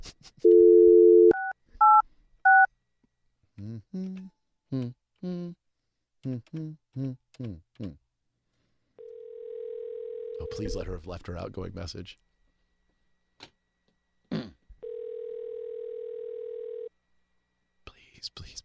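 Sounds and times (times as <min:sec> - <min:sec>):
telephone dial tone: 0:00.4 - 0:02.7, 0:09.0 - 0:10.6, 0:14.8 - 0:16.9
speech: 0:10.6 - 0:12.3.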